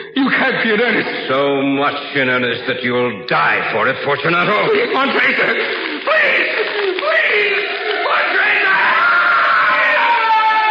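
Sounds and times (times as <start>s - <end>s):
laughter: 0.0s - 1.3s, 4.2s - 10.2s
speech: 0.2s - 7.6s
man screaming: 5.0s - 10.6s.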